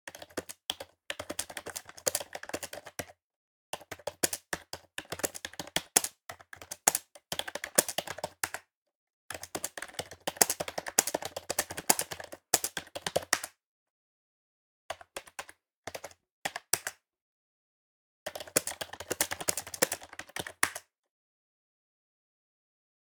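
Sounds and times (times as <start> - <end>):
desktop PS2 computer keyboard typing: 0.1 - 3.1, 3.8 - 8.6, 9.3 - 13.5, 18.3 - 20.8.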